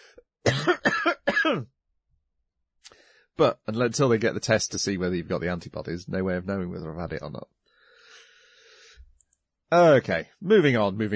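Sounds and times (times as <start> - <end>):
harsh raspy coughs: 0.4 - 1.7
speech: 1.5 - 1.8, 3.4 - 7.6, 9.7 - 11.1.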